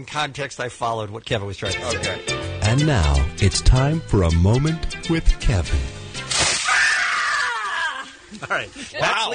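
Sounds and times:
speech: 0.0 - 6.0, 8.3 - 9.3
sharp crash-like onset: 6.3 - 6.8
loud sustained shrill scream: 6.6 - 8.2.

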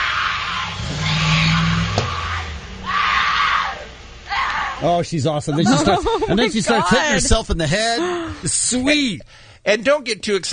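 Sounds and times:
woman screaming while chasing a car: 0.0 - 4.8
car engine rumbling and passing: 0.0 - 9.5
speech: 4.8 - 10.5
laughter: 5.4 - 8.7.

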